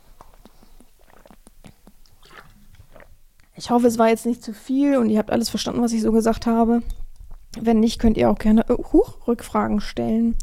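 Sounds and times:
sipping and swallowing water: 0.0s - 3.6s, 6.9s - 7.6s
small wet clicks and gulps: 0.0s - 3.6s, 6.9s - 7.7s
speech: 3.6s - 7.0s, 7.6s - 10.4s.

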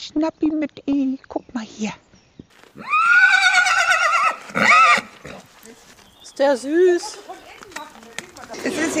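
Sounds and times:
speech: 0.1s - 2.1s, 6.4s - 7.3s
horse neighing in a stable: 2.7s - 5.5s.

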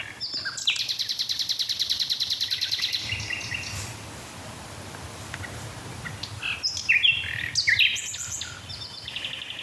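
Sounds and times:
nightingale singing: 0.0s - 3.8s, 6.0s - 9.6s
soft outdoor background: 0.0s - 9.6s.

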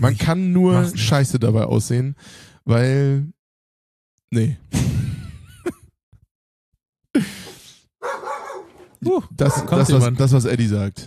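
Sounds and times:
speech: 0.0s - 3.4s, 4.3s - 5.8s, 7.2s - 7.4s, 9.0s - 11.0s
dog barking aggressively: 8.0s - 10.0s.

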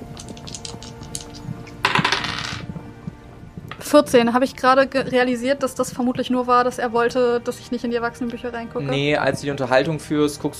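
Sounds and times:
dice rattling in a cup: 0.2s - 2.6s
speech: 3.9s - 10.5s.

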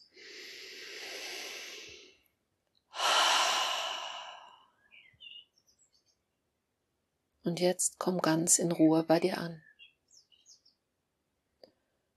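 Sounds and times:
slow deep breathing during a guided relaxation exercise: 0.0s - 2.3s, 2.9s - 4.8s
speech: 7.5s - 9.7s.

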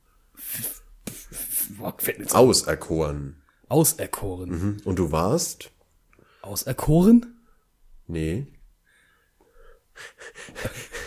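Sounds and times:
strange wheezy raspy breathing: 0.3s - 1.8s, 8.8s - 11.0s
speech: 1.8s - 5.8s, 6.4s - 7.4s, 8.1s - 8.6s, 10.0s - 10.8s.

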